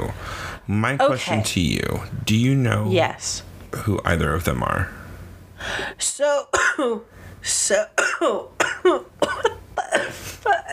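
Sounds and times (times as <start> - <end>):
speech: 0.7 - 5.0, 5.6 - 10.7
harsh coughs: 8.0 - 10.7.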